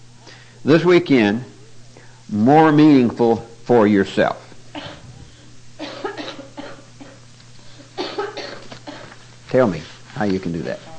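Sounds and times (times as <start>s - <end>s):
low steady hum: 0.0s - 10.9s
speech: 0.6s - 1.5s, 2.3s - 4.4s, 9.5s - 10.9s
person coughing harshly: 4.7s - 5.1s, 5.8s - 7.2s, 7.8s - 9.2s.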